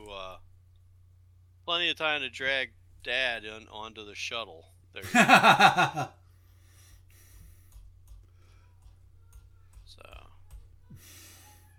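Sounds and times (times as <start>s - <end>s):
steady low hum: 0.0s - 11.7s
speech: 1.7s - 6.2s
laughter: 5.0s - 6.1s
computer keyboard keys clicking as a cat sits on the keyboard: 7.6s - 10.7s.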